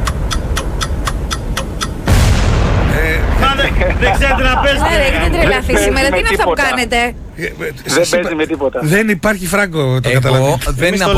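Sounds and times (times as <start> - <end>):
rapid ticks of a countdown game timer: 0.0 - 2.2
bomb explosion sound effect from a countdown game: 2.0 - 5.8
laughter: 3.2 - 6.6
speech: 4.0 - 11.1.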